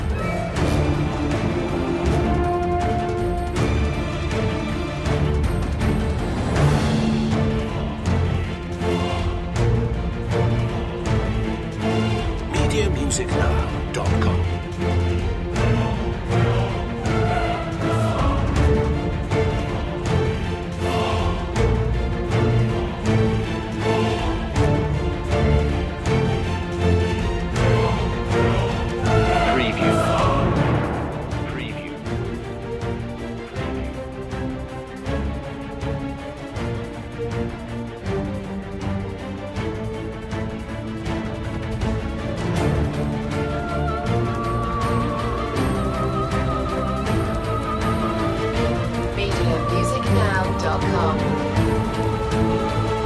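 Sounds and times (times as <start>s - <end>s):
choir singing: 0.1s - 53.0s.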